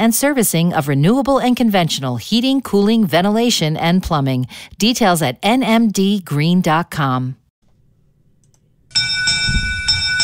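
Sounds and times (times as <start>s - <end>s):
speech: 0.0s - 7.4s
Derby bell ringing with bright metallic tones: 8.9s - 10.2s.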